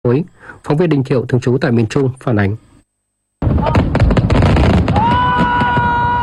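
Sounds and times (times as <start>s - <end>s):
speech: 0.1s - 2.7s
fireworks exploding at festival display: 3.4s - 6.2s
whistling firework rocket rising: 3.4s - 6.2s
rumbling crowd at festival: 4.6s - 6.2s.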